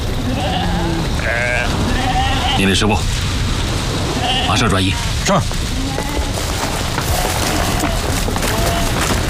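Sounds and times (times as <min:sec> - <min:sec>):
flock of sheep bleating while being herded: 0:00.2 - 0:02.7, 0:04.1 - 0:05.1, 0:05.7 - 0:09.2
speech: 0:02.6 - 0:03.2, 0:04.5 - 0:05.7.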